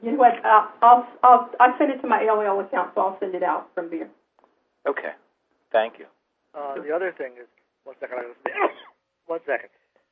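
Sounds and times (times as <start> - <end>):
speech: 0.0 - 4.2, 4.8 - 9.8
person coughing: 8.4 - 8.9
throat clearing: 8.4 - 8.9.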